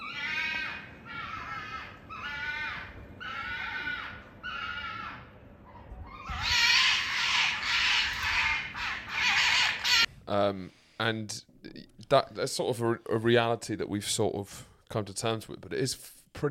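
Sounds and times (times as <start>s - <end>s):
foxes screaming at night in East London: 0.0s - 10.1s
faint hum: 0.0s - 16.5s
speech: 10.3s - 11.5s, 12.1s - 16.5s.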